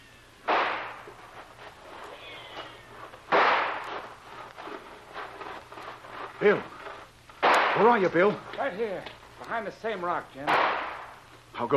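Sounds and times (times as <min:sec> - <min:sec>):
faint hiss: 0:00.0 - 0:11.7
gunshots fired as a signal to charge: 0:00.4 - 0:01.1, 0:03.3 - 0:04.1, 0:07.4 - 0:08.1, 0:10.4 - 0:11.2
speech: 0:06.4 - 0:06.8, 0:07.8 - 0:10.7, 0:11.6 - 0:11.7.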